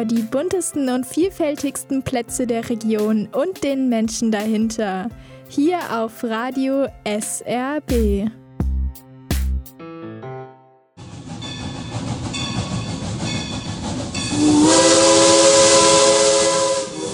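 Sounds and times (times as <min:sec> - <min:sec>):
speech: 0:00.0 - 0:08.4
steam locomotive hissing: 0:11.1 - 0:17.1
steam locomotive whistle: 0:14.2 - 0:17.1.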